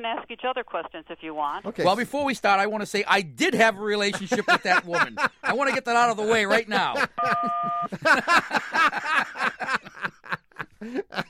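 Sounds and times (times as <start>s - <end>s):
speech: 0.0s - 9.8s, 10.8s - 11.2s
people laughing and chuckling: 4.0s - 11.2s
short electronic beep signaling a lie: 7.2s - 7.9s.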